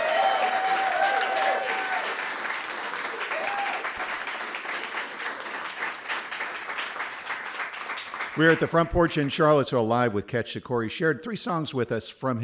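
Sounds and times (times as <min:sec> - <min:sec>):
audience whoops and cheers: 0:00.0 - 0:02.4, 0:03.0 - 0:04.1
audience applause: 0:00.0 - 0:09.3
speech: 0:08.4 - 0:12.4.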